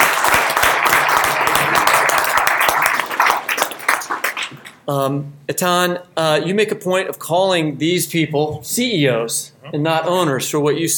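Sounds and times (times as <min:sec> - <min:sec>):
small crowd applauding: 0:00.0 - 0:04.7
speech: 0:04.9 - 0:10.9.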